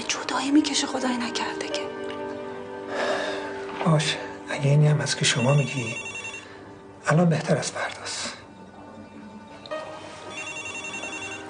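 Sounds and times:
speech: 0.3s - 1.8s, 3.8s - 6.1s, 7.1s - 8.3s
telephone ringing with a bright electronic tone: 5.2s - 6.7s, 10.2s - 11.4s.

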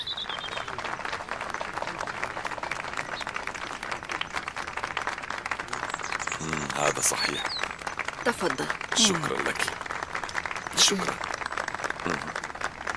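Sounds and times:
crowd applauding: 0.0s - 12.9s
speech: 6.4s - 7.6s, 8.2s - 9.8s, 10.8s - 11.3s, 12.0s - 12.3s.

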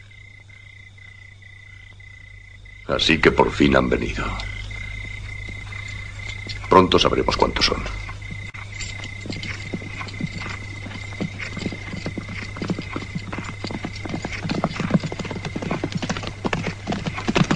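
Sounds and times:
low constant hum: 0.0s - 17.5s
speech: 2.9s - 4.6s, 6.8s - 8.0s
hundreds of army horses galloping: 3.0s - 17.5s.

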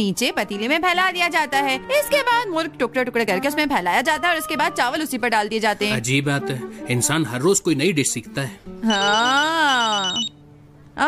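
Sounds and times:
speech: 0.0s - 10.3s
phone ringing with a melodic electronic ringtone: 8.8s - 10.3s.

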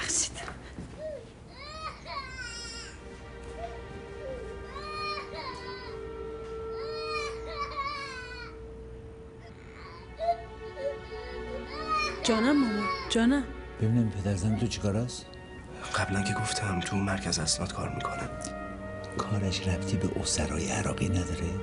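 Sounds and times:
baby crying after waking up: 1.0s - 13.4s
steady hum: 3.0s - 13.0s
speech: 12.2s - 15.3s, 16.0s - 18.6s, 19.2s - 21.6s.

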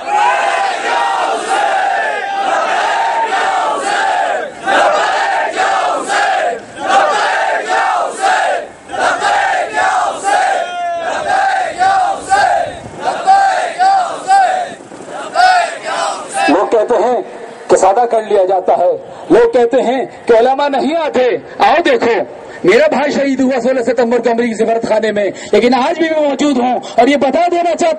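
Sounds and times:
large crowd chanting a slogan in unison: 0.0s - 16.7s
speech: 18.4s - 27.9s.

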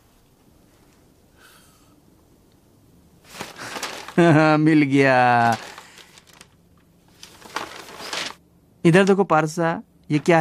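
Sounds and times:
large paper map of the world rustling and crinkling as it is unfolded: 3.2s - 9.2s, 10.1s - 10.3s
speech: 4.2s - 5.7s, 8.8s - 10.3s.

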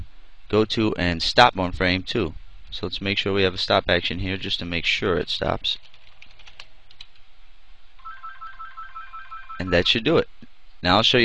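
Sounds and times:
speech: 0.5s - 5.9s, 9.6s - 11.2s
computer keyboard typing clicks: 5.8s - 7.2s
telephone ringing with an electronic ringtone: 8.0s - 10.0s.

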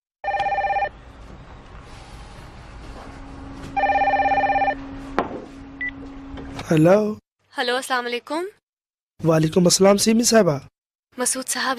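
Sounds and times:
telephone ringing with bright electronic trilling: 0.2s - 0.9s, 3.8s - 4.8s
speech: 6.7s - 8.6s, 9.2s - 11.7s.

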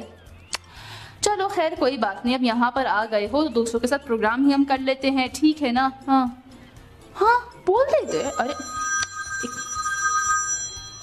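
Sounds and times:
speech: 1.4s - 6.4s, 7.2s - 8.8s
telephone ringing with electronic bell tone: 8.0s - 11.0s.

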